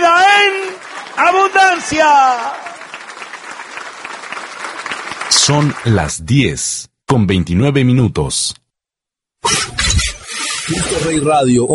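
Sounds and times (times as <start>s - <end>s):
church congregation applause during a service: 0.0s - 6.6s
speech: 1.3s - 2.7s, 5.5s - 8.6s, 10.7s - 11.7s.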